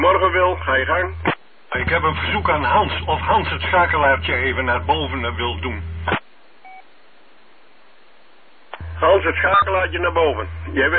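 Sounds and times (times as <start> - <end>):
continuous hiss on a radio channel: 0.0 - 10.9
speech: 0.5 - 6.2, 9.0 - 10.9
loud beep signal on a radio channel: 9.4 - 9.8.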